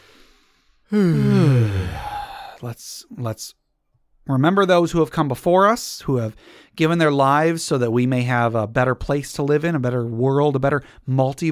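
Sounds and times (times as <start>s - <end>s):
deep breath let out as a loud voiced sigh: 0.0s - 2.8s
speech: 0.9s - 1.5s, 2.6s - 3.6s, 4.3s - 11.5s.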